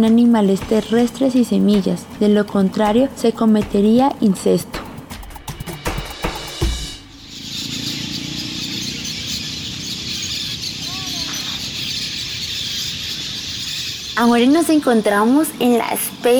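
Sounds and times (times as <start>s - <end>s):
speech: 0.0s - 4.8s, 14.2s - 16.3s
thousands of parakeets and swallows chattering in the Amazon rainforest at Leticia: 7.2s - 16.3s.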